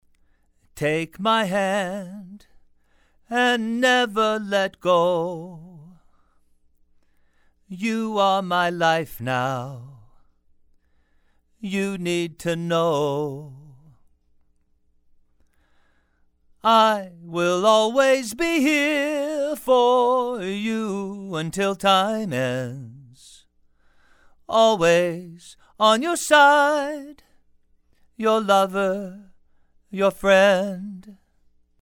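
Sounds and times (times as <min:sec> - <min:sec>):
male vocals: 0:00.7 - 0:02.6, 0:03.2 - 0:06.0, 0:07.7 - 0:10.3, 0:11.6 - 0:14.0, 0:16.6 - 0:23.5, 0:24.5 - 0:27.3, 0:28.1 - 0:31.2.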